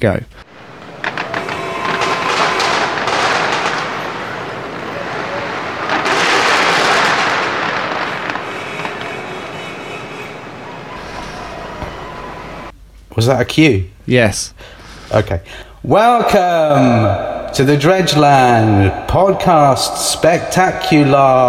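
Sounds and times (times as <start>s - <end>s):
speech: 0.0s - 0.4s, 13.2s - 21.4s
firework going off: 0.4s - 12.7s.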